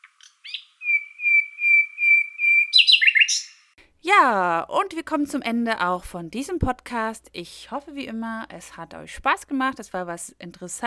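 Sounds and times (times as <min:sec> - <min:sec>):
Common Nightingale song: 0:00.0 - 0:03.8
speech: 0:04.0 - 0:10.8.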